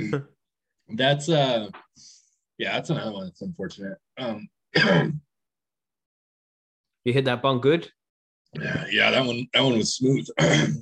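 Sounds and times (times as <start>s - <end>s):
speech: 0.1s - 5.2s, 7.0s - 10.7s
person coughing: 4.7s - 5.2s, 10.4s - 10.7s.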